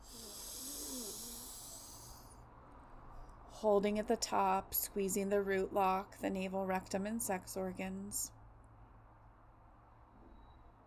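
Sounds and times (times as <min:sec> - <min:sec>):
deep inhale through both nostrils during alternate nostril breathing practice: 0:00.0 - 0:02.4
speech: 0:03.6 - 0:08.4.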